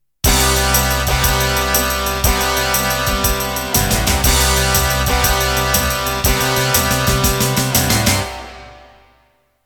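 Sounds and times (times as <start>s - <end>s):
shuffle rhythm music intro: 0.2s - 8.8s.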